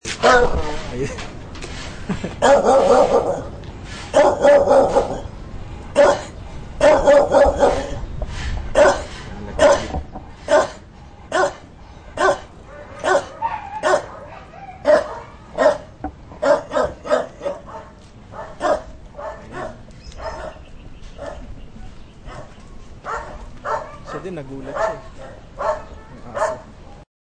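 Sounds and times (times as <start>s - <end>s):
dog barking: 0.2s - 0.8s, 2.4s - 3.5s, 4.1s - 5.2s, 6.0s - 8.0s, 8.8s - 11.6s, 12.2s - 20.6s, 21.2s - 21.4s, 22.3s - 26.7s.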